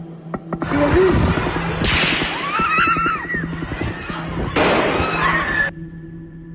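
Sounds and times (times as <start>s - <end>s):
distressed voices and screams: 0.7s - 5.7s
gunshots in an echoing indoor shopping mall: 1.2s - 2.7s, 4.6s - 5.2s.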